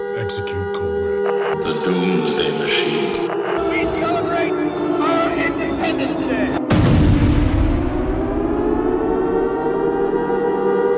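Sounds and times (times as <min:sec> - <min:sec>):
speech: 0:00.2 - 0:01.0, 0:01.6 - 0:06.7
sirens wailing: 0:01.3 - 0:06.7, 0:07.7 - 0:10.9.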